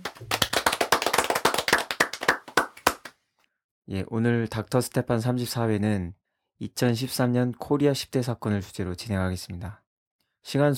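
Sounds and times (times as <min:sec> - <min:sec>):
audience applause for striking railway union workers: 0:00.0 - 0:03.1
speech: 0:03.9 - 0:09.8, 0:10.4 - 0:10.7.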